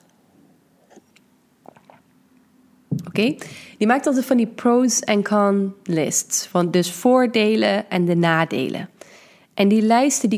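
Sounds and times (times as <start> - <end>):
person taking a quick sip of water: 0.8 - 2.2
small wet gulps and mouth clicks: 0.9 - 2.2
speech: 3.2 - 8.9, 9.6 - 10.3.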